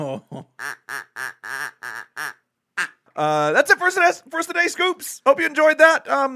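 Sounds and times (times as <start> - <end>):
speech: 0.0 - 1.0, 3.2 - 6.3
duck quacking: 0.6 - 3.0.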